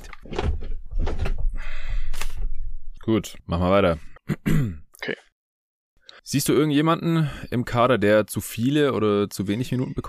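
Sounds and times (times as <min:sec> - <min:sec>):
door being closed: 0:00.0 - 0:01.5
speech: 0:03.1 - 0:05.3, 0:06.2 - 0:10.0.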